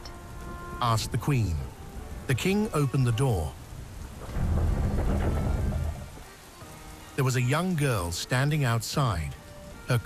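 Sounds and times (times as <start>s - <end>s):
deep rumble of thunder: 0.0s - 7.8s
steady rain in a thunderstorm: 0.0s - 10.0s
speech: 0.8s - 3.6s, 7.2s - 10.0s.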